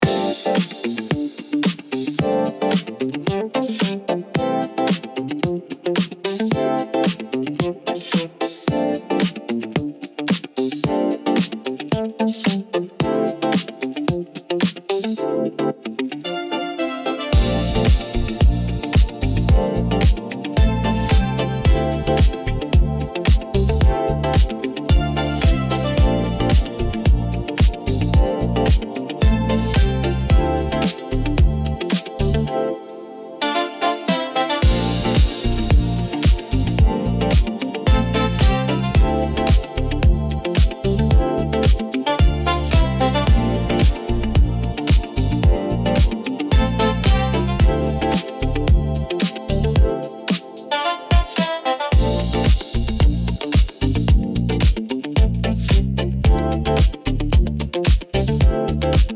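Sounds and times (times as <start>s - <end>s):
hypnotic funky disco groove: 0.0s - 15.2s, 17.3s - 32.5s, 33.4s - 59.1s.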